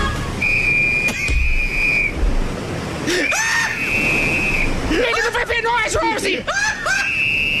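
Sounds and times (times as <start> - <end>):
steady rush of water noise: 0.0 - 7.5
long shrill blasts from a life-jacket whistle: 0.4 - 2.2, 3.3 - 4.8, 7.0 - 7.5
laughter: 6.0 - 7.3.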